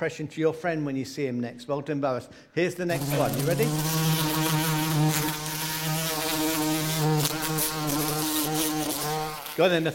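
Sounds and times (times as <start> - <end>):
speech: 0.0 - 4.4, 9.6 - 9.9
bees buzzing in the garden: 2.9 - 9.8.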